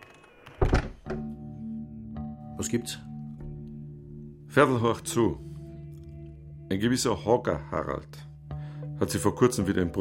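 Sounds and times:
door shutting with heavy thud: 0.5 - 1.3
speech: 2.6 - 3.1, 4.5 - 5.5, 6.7 - 8.3, 9.0 - 9.9.

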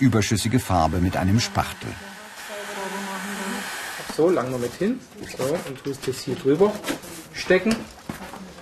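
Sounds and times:
speech: 0.0 - 2.1, 4.2 - 8.0
hair dryer blowing on freshly painted upholstery: 0.9 - 4.6.

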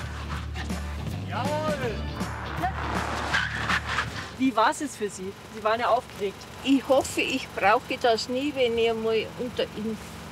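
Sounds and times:
car tires squealing under hard braking: 0.0 - 4.7
steady car engine rumble: 0.0 - 10.3
speech: 1.3 - 2.0, 4.4 - 10.1.

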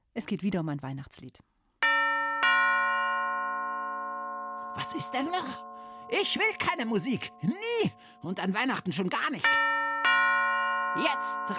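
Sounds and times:
speech: 0.2 - 1.5, 4.8 - 9.8, 11.0 - 11.5
doorbell ding-dong chime: 1.8 - 8.3, 9.5 - 11.5.

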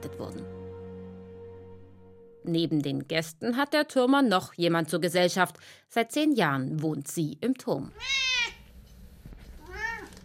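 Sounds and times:
speech: 0.0 - 0.6, 2.4 - 8.6
three-coloured cat meowing in a town tower in Nördlingen: 7.9 - 8.6, 9.6 - 10.2.

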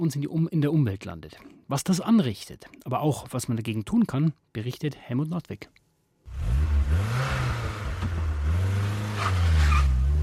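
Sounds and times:
speech: 0.0 - 5.8
car engine roaring and revving hard: 6.3 - 10.2
tires screeching against the pavement: 6.3 - 10.2.

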